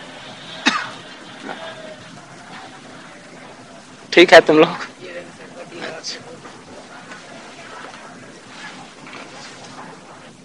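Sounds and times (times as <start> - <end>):
person coughing: 0.6 - 1.0
speech: 4.2 - 4.9.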